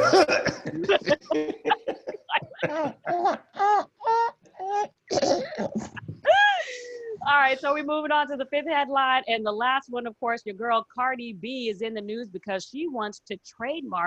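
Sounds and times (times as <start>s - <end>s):
person coughing and clearing throat: 0.0s - 3.4s, 5.1s - 6.0s
laughter: 0.0s - 3.5s, 5.6s - 7.0s
speech: 7.6s - 14.0s.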